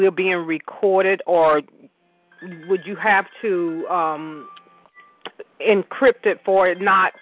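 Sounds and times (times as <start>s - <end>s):
speech: 0.0s - 1.8s, 2.4s - 4.6s, 5.6s - 7.2s
electronic phone ringtone for an incoming call: 2.3s - 5.2s, 6.4s - 7.2s.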